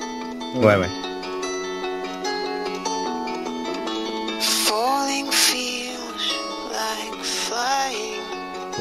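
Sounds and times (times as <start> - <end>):
sustained instrumental accompaniment: 0.0 - 8.7
speech: 0.5 - 1.1
man singing a slow mournful song with vibrato: 4.4 - 8.7.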